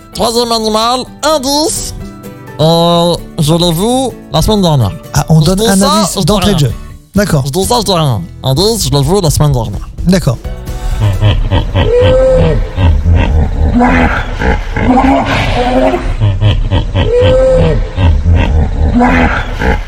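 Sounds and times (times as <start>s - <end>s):
speech: 0.2s - 2.0s, 2.6s - 19.8s
hippopotamus bellowing grunts and wheezing honks: 11.0s - 19.8s.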